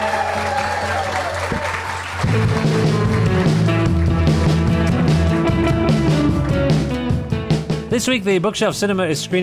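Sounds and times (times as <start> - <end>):
crowd applauding: 0.0 - 6.9
speech: 8.0 - 9.4.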